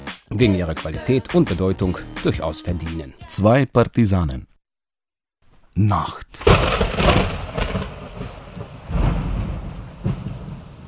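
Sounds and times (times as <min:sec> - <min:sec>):
speech: 0:00.3 - 0:04.5, 0:05.8 - 0:07.2
low thunder rumbles: 0:06.4 - 0:10.8
steady rain hissing: 0:06.4 - 0:10.8.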